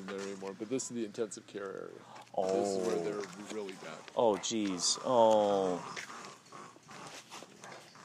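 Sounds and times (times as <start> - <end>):
speech: 0.6 - 6.1
animals growling at each other: 2.4 - 8.0.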